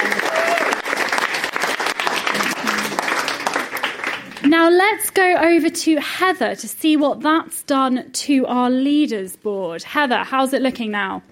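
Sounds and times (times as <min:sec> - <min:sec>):
audience applauding a contestant: 0:00.0 - 0:04.5
speech: 0:04.6 - 0:11.3.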